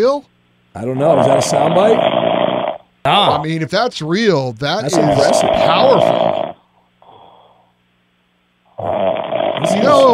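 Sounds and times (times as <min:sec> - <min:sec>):
speech: 0:00.0 - 0:02.3, 0:03.0 - 0:06.5
loud rough rattling snoring: 0:01.0 - 0:02.8, 0:04.9 - 0:06.6, 0:08.8 - 0:10.1.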